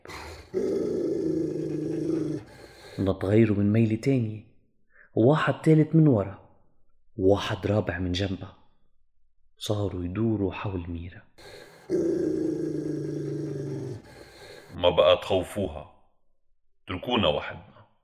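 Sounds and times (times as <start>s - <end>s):
dog-like animal growling low: 0.0s - 3.1s, 11.4s - 14.8s
speech: 3.0s - 4.5s, 5.2s - 6.4s, 7.2s - 8.6s, 9.6s - 12.6s, 14.8s - 16.0s, 16.9s - 17.7s.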